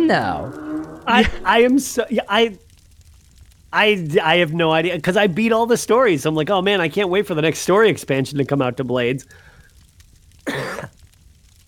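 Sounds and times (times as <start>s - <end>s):
faint hiss: 0.0s - 11.6s
speech: 0.1s - 2.6s, 3.7s - 9.5s
person coughing: 10.5s - 10.9s.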